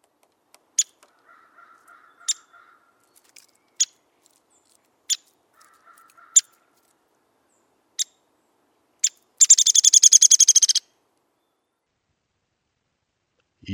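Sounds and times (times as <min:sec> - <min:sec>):
Downy Woodpecker sharp high pik calls: 0:00.7 - 0:02.8, 0:05.1 - 0:06.8, 0:09.0 - 0:10.9.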